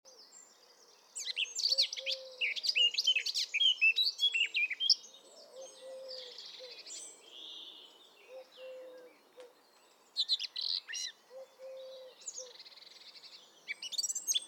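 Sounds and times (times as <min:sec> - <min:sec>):
Eurasian blackcap Sylvia atricapilla song: 0:00.1 - 0:14.4.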